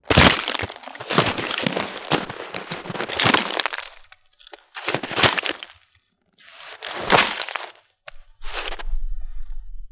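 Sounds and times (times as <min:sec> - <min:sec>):
ice breaking: 0:00.0 - 0:09.0.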